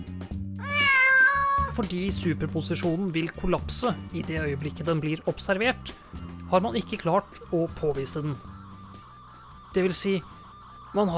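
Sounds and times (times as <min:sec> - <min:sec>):
cat meowing: 0:00.6 - 0:01.8
speech: 0:01.8 - 0:08.5, 0:09.7 - 0:11.1.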